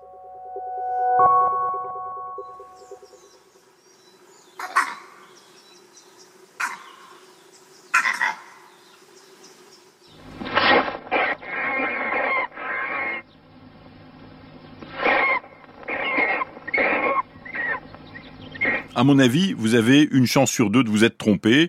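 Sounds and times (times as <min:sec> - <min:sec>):
steady tonal hum: 0:00.0 - 0:04.5, 0:10.1 - 0:19.6
vervet monkey jaguar alarm call barks: 0:04.6 - 0:05.2, 0:06.6 - 0:07.2, 0:07.9 - 0:08.7, 0:10.6 - 0:13.3, 0:14.9 - 0:19.0
speech: 0:19.0 - 0:21.6.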